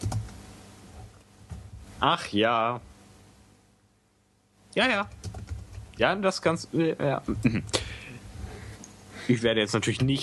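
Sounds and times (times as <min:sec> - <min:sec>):
typing on a computer keyboard: 0:00.0 - 0:00.3, 0:05.1 - 0:05.8
speech: 0:02.0 - 0:02.9, 0:04.8 - 0:05.2, 0:06.0 - 0:07.8, 0:09.3 - 0:10.2.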